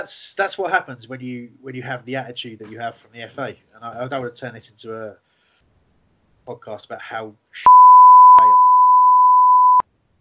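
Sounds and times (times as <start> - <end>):
speech: 0.0 - 5.2, 6.4 - 7.7
steady mid-pitch electronic beep: 7.7 - 9.8.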